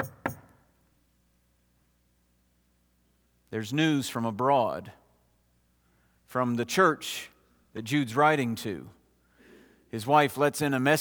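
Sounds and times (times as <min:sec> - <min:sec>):
sharp knocks on a wooden door: 0:00.0 - 0:00.5
speech: 0:03.5 - 0:05.0, 0:06.3 - 0:09.0, 0:09.9 - 0:10.9.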